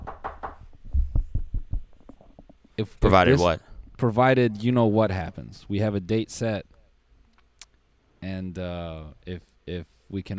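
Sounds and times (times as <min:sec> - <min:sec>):
knocking on wood for luck: 0:00.0 - 0:01.8
speech: 0:02.8 - 0:06.8, 0:08.2 - 0:10.3.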